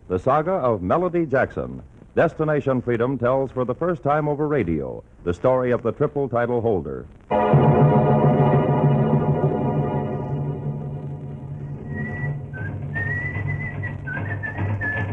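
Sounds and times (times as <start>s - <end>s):
speech: 0.1s - 7.8s
steady dense low droning background: 7.3s - 14.0s
man whistling a wavering tune: 11.8s - 15.1s.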